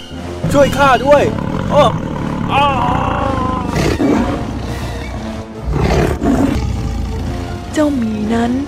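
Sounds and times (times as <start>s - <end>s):
lion deep growling rumble: 0.4s - 7.8s
speech: 0.5s - 4.1s, 7.8s - 8.6s
lion roaring in long rumbling bursts: 1.1s - 4.6s, 5.6s - 7.5s.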